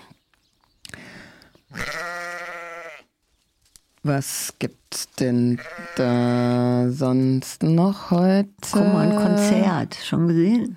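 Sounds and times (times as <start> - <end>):
sheep bleating: 1.7 - 3.1, 5.5 - 6.6
speech: 4.0 - 10.7.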